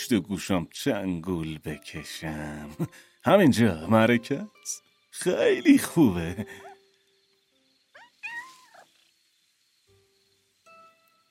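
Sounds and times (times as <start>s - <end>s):
speech: 0.1s - 6.7s
cat meowing: 8.0s - 9.0s.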